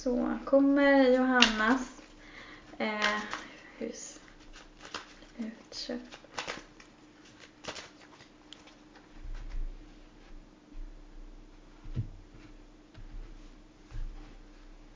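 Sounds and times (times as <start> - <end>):
speech: 0.0 - 2.0, 2.8 - 4.2, 5.4 - 6.2
low steady hum: 0.0 - 14.9
deck of tarot cards being shuffled: 2.9 - 9.5.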